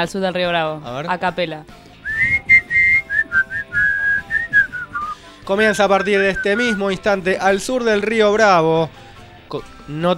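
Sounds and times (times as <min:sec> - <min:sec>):
speech: 0:00.0 - 0:01.9, 0:05.5 - 0:10.1
person whistling a tune: 0:02.0 - 0:06.9.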